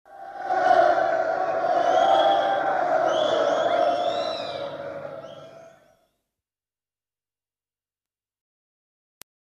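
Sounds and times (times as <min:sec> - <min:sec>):
people shouting: 0:00.1 - 0:05.8.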